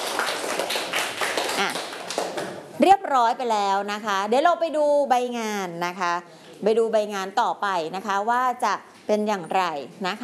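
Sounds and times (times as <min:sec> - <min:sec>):
class of students clapping hands: 0:00.0 - 0:02.7
speech: 0:02.8 - 0:10.2.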